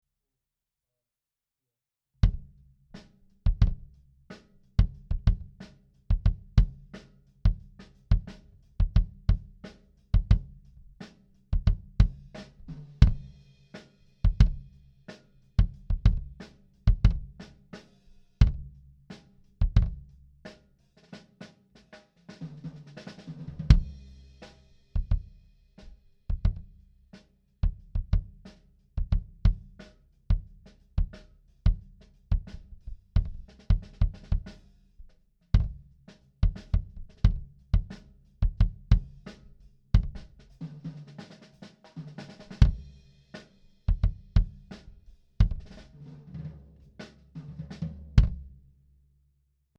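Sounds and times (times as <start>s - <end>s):
bass drum: 2.2s - 2.7s, 3.4s - 4.0s, 4.7s - 13.4s, 14.2s - 14.8s, 15.6s - 17.7s, 18.4s - 20.4s, 22.5s - 26.9s, 27.6s - 41.2s, 42.0s - 43.3s, 43.9s - 48.8s.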